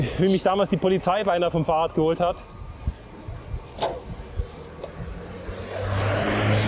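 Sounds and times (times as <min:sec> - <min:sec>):
speech: 0:00.0 - 0:02.6
car engine revving as the car accelerates: 0:04.1 - 0:06.6.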